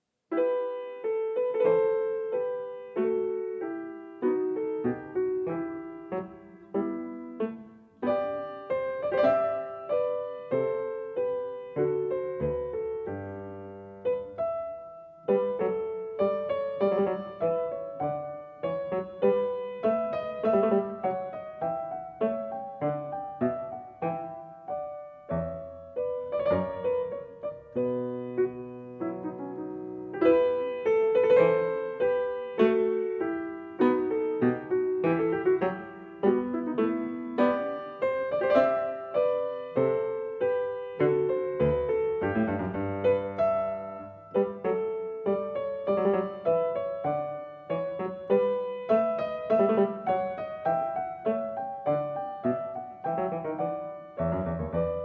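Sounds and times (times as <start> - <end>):
baroque dance piece: 0.0 - 55.0.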